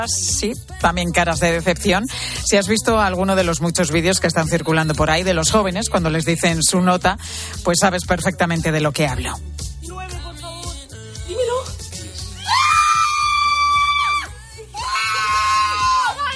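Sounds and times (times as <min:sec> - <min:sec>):
speech: 0:00.0 - 0:09.7
two high-pitched voices shrieking with excitement: 0:12.4 - 0:16.2.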